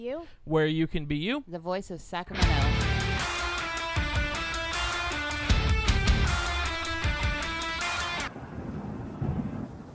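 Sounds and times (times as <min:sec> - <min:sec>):
speech: 0:00.0 - 0:03.0
pounding rhythmic music track: 0:02.3 - 0:08.3
thunder rumbling: 0:02.4 - 0:09.9.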